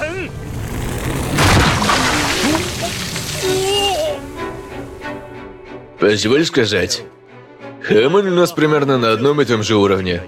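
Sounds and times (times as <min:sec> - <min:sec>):
sudden loud burst of water splashing outward with sloshing: 0:00.4 - 0:04.7
speech: 0:06.0 - 0:07.2, 0:07.9 - 0:10.2.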